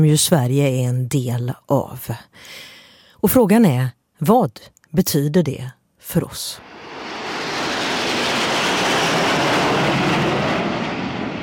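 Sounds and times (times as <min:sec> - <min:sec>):
speech: 0:00.0 - 0:07.0
fighter jets flying low over Paris rooftops during a national day flypast: 0:06.6 - 0:11.4.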